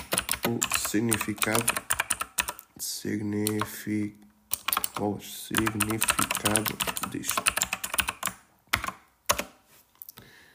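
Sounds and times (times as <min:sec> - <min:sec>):
typing on a computer keyboard: 0:00.0 - 0:02.6, 0:04.5 - 0:05.0, 0:05.6 - 0:09.6
speech: 0:00.5 - 0:01.9, 0:02.8 - 0:04.2, 0:05.0 - 0:07.5.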